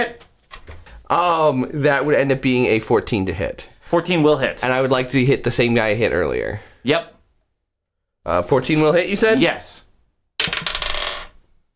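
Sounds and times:
speech: 1.1s - 7.1s, 8.2s - 9.8s
dice rolled for damage clattering across a hard tabletop: 10.4s - 11.4s.

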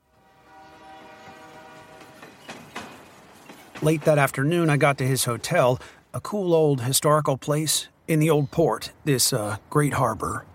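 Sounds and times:
train horn sounding a sustained tone: 0.0s - 3.4s
train rolling by on rails: 0.0s - 6.2s
sharp metallic clacks: 2.0s - 5.0s
speech: 3.8s - 10.5s.

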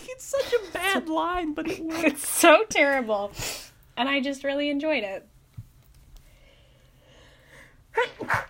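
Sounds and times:
speech: 0.1s - 5.3s, 8.0s - 8.4s
sneeze: 8.0s - 8.4s.

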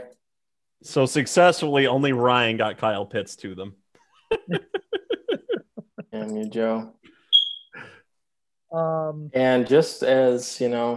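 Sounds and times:
speech: 0.8s - 3.8s, 4.5s - 4.7s, 6.2s - 7.1s, 8.7s - 10.9s
laughter: 4.3s - 6.3s
dying wall-mounted smoke detector low-battery chirp: 7.2s - 7.8s.

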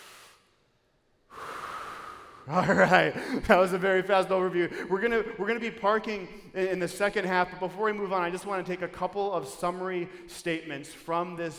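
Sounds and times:
group taking a deep breath together: 0.0s - 0.6s, 1.2s - 3.5s
laughter: 2.5s - 5.4s
speech: 2.5s - 11.5s.

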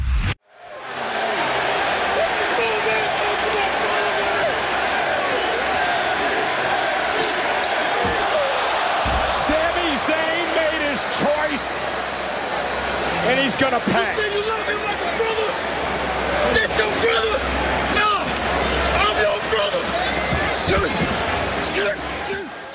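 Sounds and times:
huge wrestling arena crowd cheering and shouting: 0.4s - 22.7s
speech: 13.6s - 14.1s.

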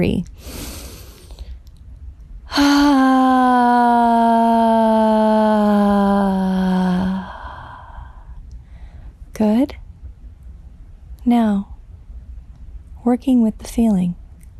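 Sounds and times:
speech: 0.0s - 0.7s, 2.6s - 4.5s, 13.1s - 14.2s
person letting out a deep breath as a voiced sigh: 2.5s - 8.2s.

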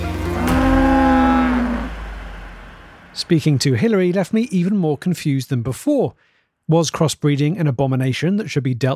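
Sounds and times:
cow-like moo bellowing: 0.2s - 2.0s
speech: 3.2s - 8.9s.

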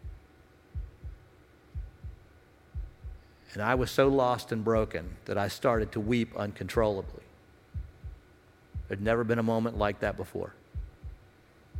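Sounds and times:
heartbeat: 0.0s - 3.2s, 3.8s - 4.2s, 4.8s - 5.2s, 5.8s - 6.2s, 6.8s - 9.2s, 9.8s - 11.7s
faint hum: 0.0s - 11.7s
speech: 3.5s - 7.3s, 8.9s - 10.6s.

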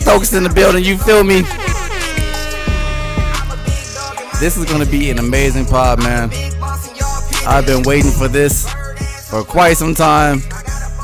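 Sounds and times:
air horn sound effect blasts: 0.0s - 6.5s
speech: 0.1s - 1.8s, 4.4s - 6.5s, 7.4s - 10.6s.

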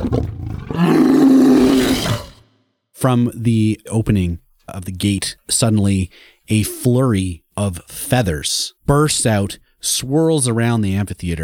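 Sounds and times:
speech: 0.0s - 0.9s, 3.0s - 11.4s
Tyrannosaurus rex roar sound effect: 0.0s - 2.5s.

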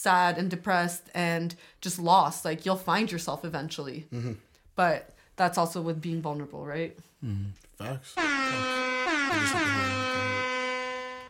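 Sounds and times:
speech: 0.0s - 10.4s
air horn blast: 8.0s - 11.2s.

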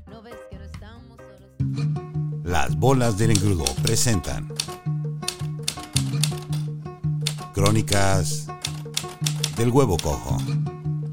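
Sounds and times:
tonal musical bed: 1.6s - 11.1s
speech: 2.5s - 4.5s, 7.6s - 8.5s, 9.6s - 10.6s
rapid typewriter keys clacking: 2.9s - 6.7s, 7.3s - 10.5s.

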